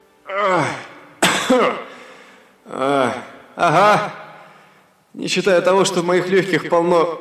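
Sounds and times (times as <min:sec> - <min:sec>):
speech: 0:00.3 - 0:00.8, 0:01.5 - 0:01.8, 0:05.3 - 0:07.1
person clearing throat harshly: 0:00.3 - 0:01.9.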